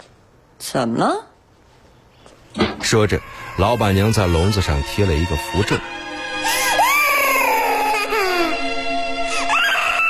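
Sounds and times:
speech: 0.0s - 1.3s, 2.8s - 6.6s
small creature in a cage crying sorrowfully: 3.1s - 4.5s, 6.5s - 8.6s, 9.3s - 10.0s.

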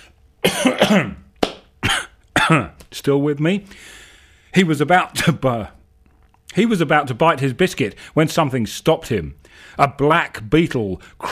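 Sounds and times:
short sharp coughs: 0.4s - 2.8s
throat clearing with a rough voiced rasp: 0.4s - 2.8s, 5.2s - 5.4s
speech: 0.6s - 1.2s, 2.5s - 5.8s, 6.5s - 11.3s.

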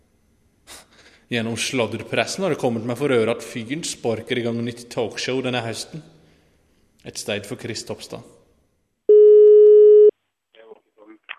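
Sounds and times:
speech: 1.3s - 6.2s, 7.0s - 8.4s
telephone ringing tone on a phone call: 9.1s - 10.1s.

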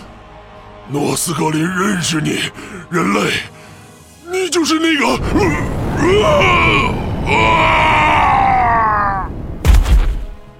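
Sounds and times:
speech: 0.9s - 3.6s, 4.4s - 7.9s
robed monster leader's anguished scream: 5.6s - 9.4s.

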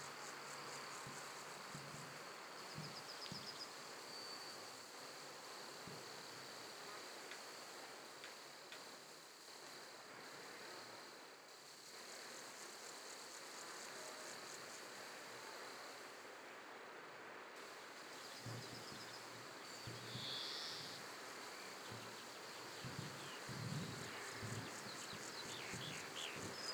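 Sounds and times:
crickets chirring near a wheat field in Huldange, Luxembourg: 0.0s - 16.4s, 17.6s - 26.7s
wind on a windy summer evening near a wheat field: 21.9s - 26.7s.

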